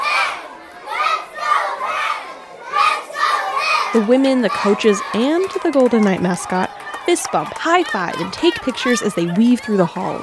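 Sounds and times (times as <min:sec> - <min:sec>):
crowd of children cheering and shouting: 0:00.0 - 0:10.2
speech: 0:03.9 - 0:10.2
laughter: 0:04.0 - 0:10.2.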